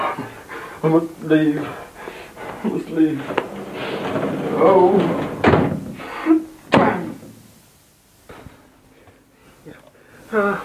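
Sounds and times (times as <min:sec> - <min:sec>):
speech: 0:00.8 - 0:01.9, 0:02.6 - 0:05.3
faint clicks and rattles: 0:02.2 - 0:06.1
door being closed: 0:02.4 - 0:07.4.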